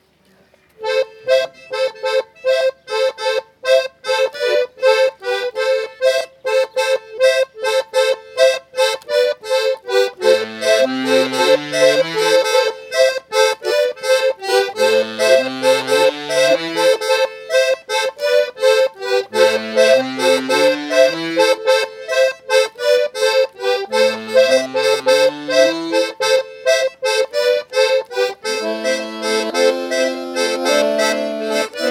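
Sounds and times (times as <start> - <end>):
studio accordions playing festival music: 0.8 - 31.9.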